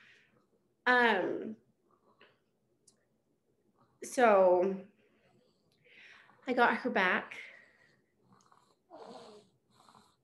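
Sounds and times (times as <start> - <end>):
speech: 0.9 - 1.6, 4.0 - 4.9, 6.5 - 7.5
baby girl snoring softly: 8.2 - 10.2.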